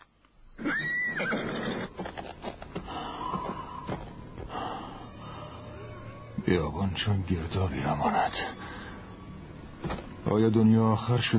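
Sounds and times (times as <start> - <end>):
horse whinnying: 0.6 - 3.9
speech: 6.5 - 8.8, 10.3 - 11.3.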